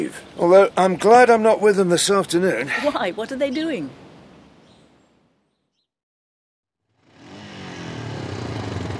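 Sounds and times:
speech: 0.0 - 4.0
engines revving: 6.9 - 8.9.

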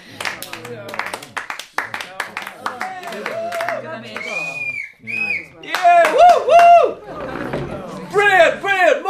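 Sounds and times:
round of applause with rapid dense clapping: 0.0 - 4.9, 5.6 - 7.2
crowd rising cheer: 2.1 - 9.0
excited voices whooping and shouting: 2.8 - 5.0, 5.7 - 7.1.

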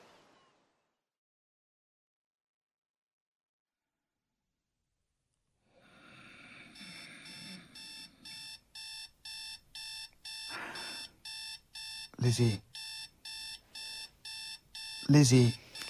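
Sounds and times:
alarm clock ringing with loud electronic beeps: 6.7 - 15.8
speech: 12.2 - 12.7, 15.1 - 15.6.

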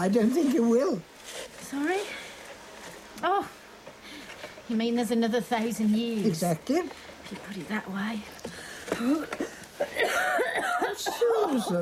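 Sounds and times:
speech: 0.0 - 1.1, 1.7 - 2.2, 3.2 - 3.6, 4.7 - 9.4, 11.0 - 11.8
woman's bad cough out in the cold: 9.0 - 11.8.

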